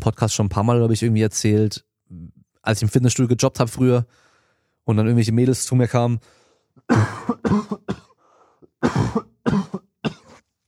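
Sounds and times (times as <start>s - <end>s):
speech: 0.0s - 1.9s, 2.6s - 4.2s, 4.8s - 8.0s
person coughing: 6.9s - 10.5s.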